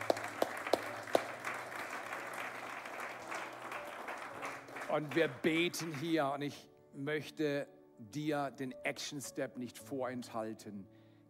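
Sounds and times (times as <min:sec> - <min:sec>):
sharp individual claps: 0:00.0 - 0:06.1
audience applauding: 0:00.0 - 0:06.2
speech: 0:04.9 - 0:11.0.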